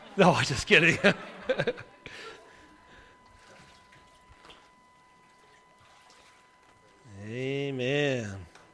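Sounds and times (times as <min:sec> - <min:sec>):
laughter: 0:00.0 - 0:02.9
speech: 0:00.2 - 0:02.3, 0:07.3 - 0:08.5
water pouring and splashing during a baptism: 0:03.3 - 0:07.0.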